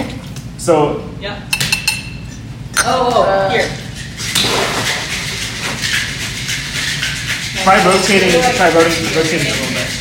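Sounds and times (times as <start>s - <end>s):
speech: 0.6s - 1.6s, 2.8s - 5.0s, 7.6s - 9.9s
cocktail shaker metal tin and glass knocking together during a bartending lesson: 3.9s - 9.9s.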